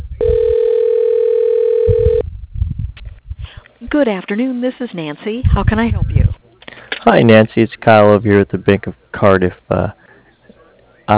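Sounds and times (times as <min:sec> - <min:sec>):
faint low rumbling noise: 0:00.0 - 0:04.2, 0:05.3 - 0:11.1
telephone ringback tone as an automated phone system dials an office extension: 0:00.2 - 0:02.2
speech: 0:03.9 - 0:06.1, 0:07.0 - 0:10.0.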